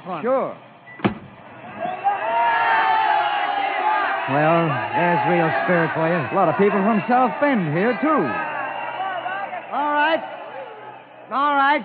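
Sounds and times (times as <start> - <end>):
speech: 0.1 - 0.7, 4.3 - 8.5, 11.3 - 11.8
sharp thump: 1.0 - 1.4
large crowd of students cheering and roaring: 1.1 - 11.8.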